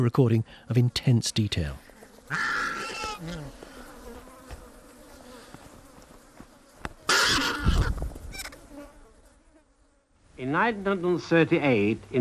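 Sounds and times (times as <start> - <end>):
speech: 0.0 - 2.5, 3.2 - 3.5, 10.4 - 12.1
flies droning and buzzing inside a zebra carcass: 1.4 - 10.3
vultures squabbling and tearing at meat of a zebra carcass: 2.2 - 4.0, 7.1 - 8.6.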